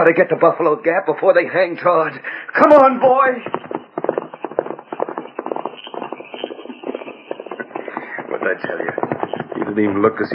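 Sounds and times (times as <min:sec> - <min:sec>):
speech: 0:00.0 - 0:03.8, 0:08.4 - 0:09.0, 0:09.7 - 0:10.3
limping pony's hooves clip-clopping on hard ground as it is ridden off: 0:02.6 - 0:10.3.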